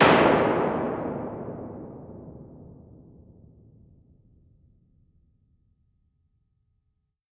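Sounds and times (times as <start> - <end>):
dark EMT 140 plate reverb impulse response: 0.0 - 3.3.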